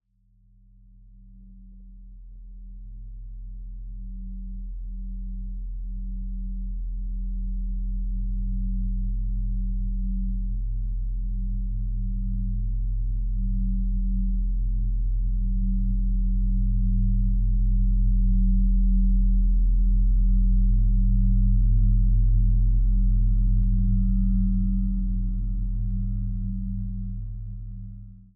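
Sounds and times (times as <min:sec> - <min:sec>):
low-frequency sound design bell drone: 0:03.7 - 0:28.3.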